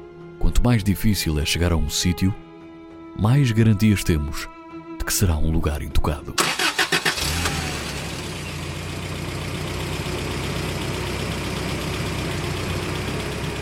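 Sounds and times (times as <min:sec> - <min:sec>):
speech: 0:00.6 - 0:02.5, 0:03.2 - 0:06.8
bus engine starting and idling before a night bus journey from Cairo: 0:06.4 - 0:13.6.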